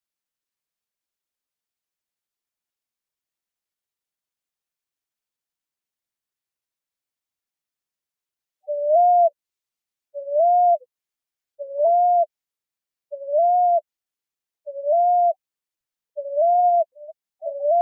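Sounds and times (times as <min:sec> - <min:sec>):
common ground dove cooing in Arizona: 0:08.7 - 0:09.4, 0:10.2 - 0:10.9, 0:11.6 - 0:12.3, 0:13.1 - 0:13.9, 0:14.7 - 0:15.4, 0:16.2 - 0:17.8.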